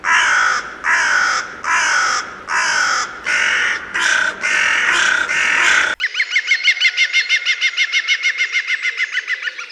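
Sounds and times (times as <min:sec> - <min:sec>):
bird squawking: 0:00.1 - 0:09.7
bird rattling call: 0:00.9 - 0:06.0.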